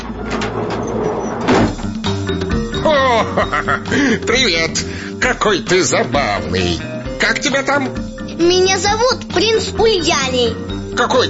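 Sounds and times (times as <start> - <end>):
door opening with scraping rattle: 0.0 - 2.5
laughter: 2.8 - 4.8
speech: 3.2 - 11.2.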